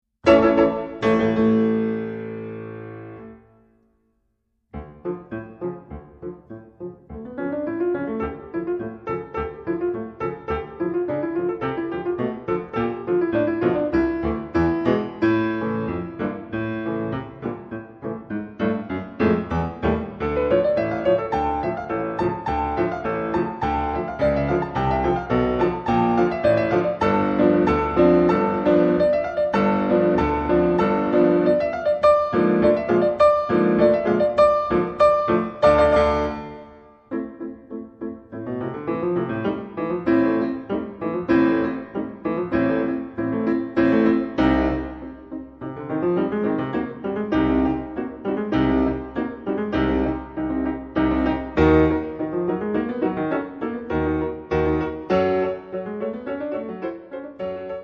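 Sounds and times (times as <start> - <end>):
female concert pianist playing piano allegro marcato: 0.2 - 4.1, 4.7 - 57.8.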